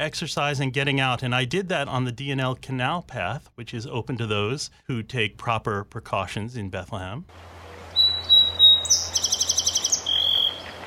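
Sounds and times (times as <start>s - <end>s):
speech: 0.0s - 7.5s
low steady outdoor hum: 0.0s - 10.8s
song sparrow singing: 7.9s - 10.8s.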